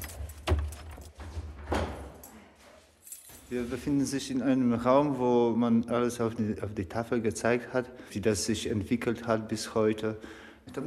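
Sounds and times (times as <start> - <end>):
heavy lighthouse door being unlocked: 0.0 - 1.2
keys jangling: 0.0 - 1.2, 3.0 - 3.5
speech: 3.5 - 10.8.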